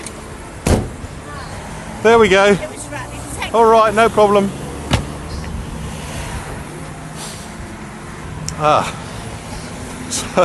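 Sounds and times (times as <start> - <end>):
car boot being closed and locked: 0.6 - 1.1, 4.9 - 5.2
car boot rattling and not properly shut: 0.6 - 1.1, 4.8 - 5.3
speech: 2.0 - 4.6, 8.6 - 9.0.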